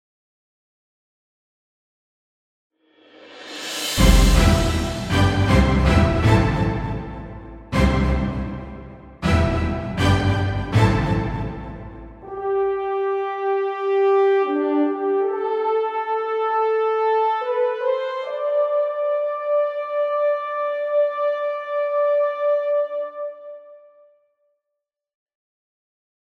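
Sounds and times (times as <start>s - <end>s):
orchestra fanfare: 3.4s - 22.9s.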